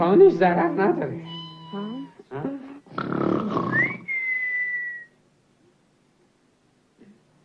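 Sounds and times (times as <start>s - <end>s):
speech: 0.0s - 1.8s
breathy rasping snore: 2.6s - 3.9s
clear whistle blown at a snorer to quiet them: 3.7s - 5.2s.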